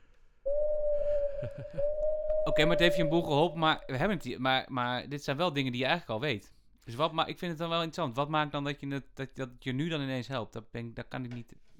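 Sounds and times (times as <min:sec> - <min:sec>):
owl hooting: 0:00.5 - 0:04.3
speech: 0:02.6 - 0:11.6.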